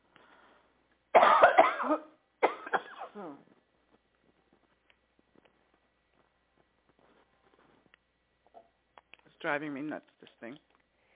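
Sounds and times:
person coughing while taking cough syrup: 0:01.2 - 0:03.4
speech: 0:09.5 - 0:10.7.

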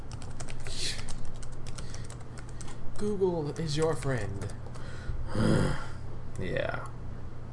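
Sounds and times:
typing a web search on a computer keyboard: 0:00.0 - 0:04.9
low hum: 0:00.0 - 0:07.5
speech: 0:03.0 - 0:04.7, 0:05.3 - 0:07.0.

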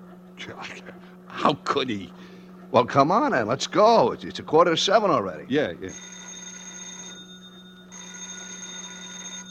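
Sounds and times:
speech: 0:00.5 - 0:06.1
telephone ringing with an electronic bell tone: 0:05.9 - 0:09.4.

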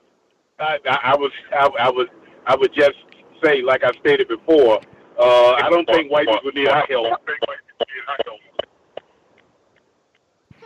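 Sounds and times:
speech: 0:00.6 - 0:07.5
voice fragments over tinny band-limited phone line: 0:00.6 - 0:08.6.

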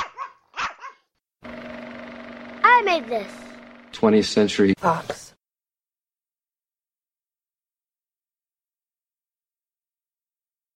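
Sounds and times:
dog barking with sharp yappy calls: 0:00.0 - 0:01.1
speech: 0:02.8 - 0:05.3.

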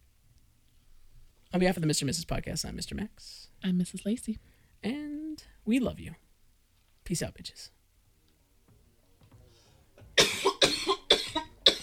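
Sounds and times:
speech: 0:01.5 - 0:06.2, 0:07.1 - 0:07.8
harsh coughs: 0:10.2 - 0:11.8.

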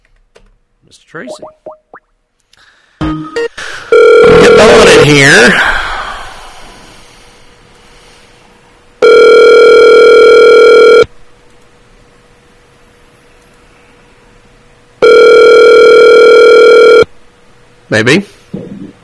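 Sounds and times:
speech: 0:00.8 - 0:01.8, 0:04.2 - 0:05.8, 0:17.9 - 0:18.4
telephone line tone while placing a call: 0:03.4 - 0:04.9, 0:09.0 - 0:11.1, 0:15.0 - 0:17.1.

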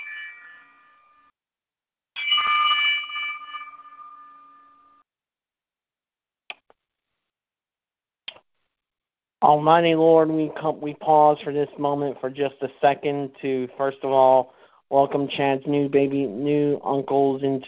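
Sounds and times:
bell struck in salute: 0:02.2 - 0:04.9
speech: 0:09.4 - 0:17.6.

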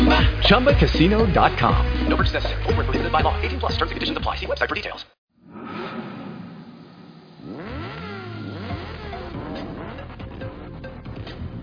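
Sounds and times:
speech: 0:00.5 - 0:05.2
car engine revving: 0:05.8 - 0:11.6.

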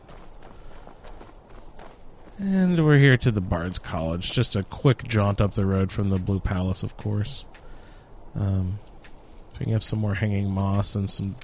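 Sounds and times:
footsteps of a video game character briskly walking down a pathway: 0:00.0 - 0:02.4
video game ambience: 0:00.0 - 0:11.4
speech: 0:02.4 - 0:07.5, 0:08.4 - 0:08.9, 0:09.6 - 0:11.4.

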